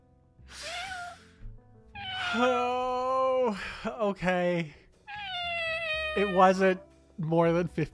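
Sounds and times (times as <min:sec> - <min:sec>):
cat meowing: 0:02.0 - 0:02.7, 0:05.1 - 0:06.6
speech: 0:02.3 - 0:02.8, 0:03.5 - 0:04.8, 0:06.2 - 0:07.9.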